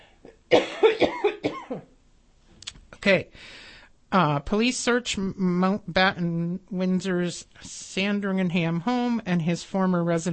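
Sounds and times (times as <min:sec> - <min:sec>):
person coughing: 0:00.0 - 0:01.9
speech: 0:03.1 - 0:10.3.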